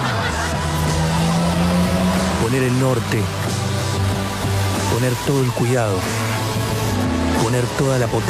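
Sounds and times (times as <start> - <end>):
laughter: 0.0 - 2.2
car engine running: 0.0 - 8.2
speech: 2.5 - 3.6, 5.0 - 6.3, 7.5 - 8.2.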